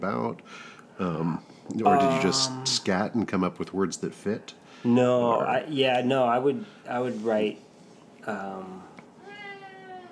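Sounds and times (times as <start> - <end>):
speech: 0.0 - 7.6, 8.2 - 8.9
cat meowing: 9.2 - 10.0.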